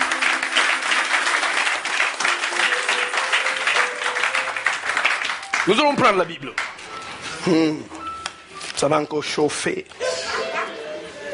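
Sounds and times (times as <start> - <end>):
church congregation applauding and cheering: 0.0 - 6.9
speech: 5.6 - 6.7, 7.4 - 8.0, 8.8 - 10.0.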